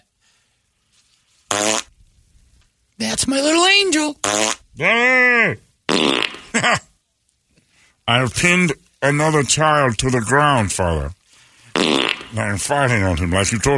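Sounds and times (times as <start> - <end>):
farts: 1.5 - 1.9, 4.2 - 4.6, 5.9 - 6.5, 11.7 - 12.4
speech: 3.1 - 5.6, 6.6 - 6.8, 8.1 - 11.2, 11.8 - 13.7.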